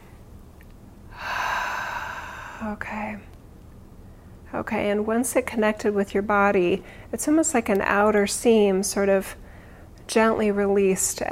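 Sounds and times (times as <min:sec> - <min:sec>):
deep breath inhale: 0:01.1 - 0:02.8, 0:09.4 - 0:09.9
speech: 0:02.6 - 0:03.3, 0:04.5 - 0:09.4, 0:10.1 - 0:11.3.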